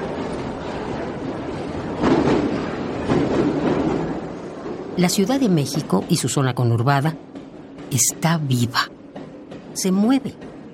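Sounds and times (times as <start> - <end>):
Mexico City metro train running with a steady rumble: 0.0 - 10.7
metro train wheels clickety-clack on rails: 0.0 - 10.7
speech: 5.0 - 7.3, 7.9 - 9.0, 9.8 - 10.5.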